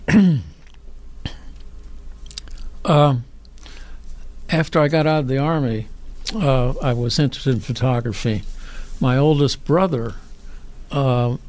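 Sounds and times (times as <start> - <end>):
gravelly throat-clearing: 0.0 - 1.6
faint small noises: 0.0 - 11.4
speech: 2.9 - 3.3, 4.5 - 10.2, 10.9 - 11.4.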